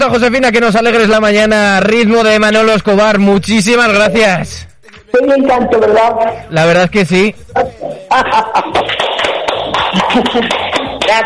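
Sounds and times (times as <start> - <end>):
speech: 0.0 - 9.0, 10.1 - 11.2
steady rhythmic clapping: 2.2 - 3.2, 4.8 - 6.4, 7.5 - 11.2
laughter: 7.7 - 11.1.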